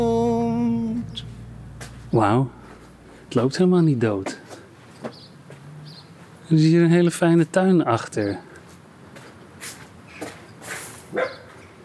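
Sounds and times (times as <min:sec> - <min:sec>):
soft outdoor noise: 0:00.0 - 0:11.8
speech: 0:02.1 - 0:02.6, 0:03.3 - 0:04.4, 0:06.5 - 0:08.5
dog barking: 0:11.1 - 0:11.6.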